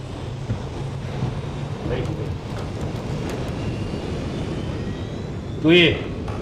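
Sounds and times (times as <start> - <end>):
airplane engine roaring at takeoff: 0.0 - 6.4.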